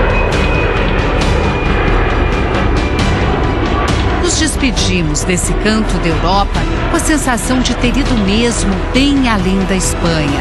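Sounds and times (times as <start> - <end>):
jet airplane taking off from an airport runway in Gibraltar: 0.0 - 10.3
speech: 4.6 - 10.3.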